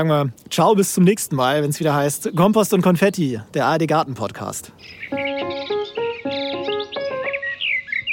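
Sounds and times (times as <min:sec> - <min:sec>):
speech: 0:00.0 - 0:05.3
songbird chirping and trilling: 0:01.9 - 0:03.3, 0:04.4 - 0:08.1.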